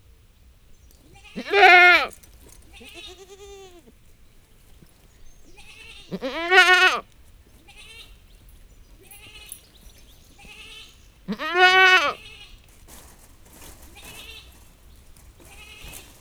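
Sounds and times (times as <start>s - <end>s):
domestic goat bleating in a farmyard: 1.0s - 12.8s, 13.8s - 16.2s
chain rattling in a farmyard: 2.1s - 3.2s, 8.2s - 11.0s, 12.5s - 16.2s.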